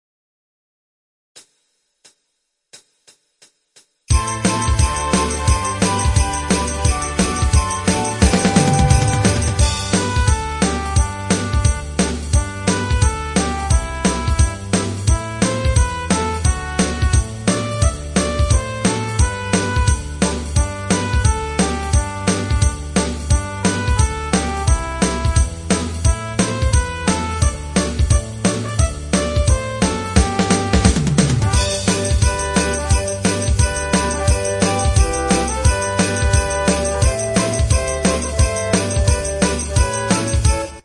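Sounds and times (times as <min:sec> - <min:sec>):
Christmas song dance music: 0:04.1 - 0:40.8.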